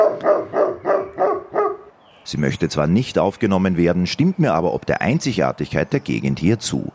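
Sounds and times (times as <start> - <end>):
husky dog barking on a forest path: 0.0 - 1.9
speech: 2.3 - 6.9.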